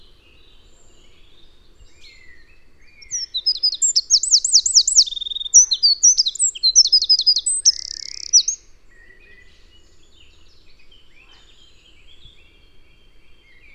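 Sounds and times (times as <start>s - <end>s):
Eurasian wren Troglodytes troglodytes singing: 0.3s - 13.7s.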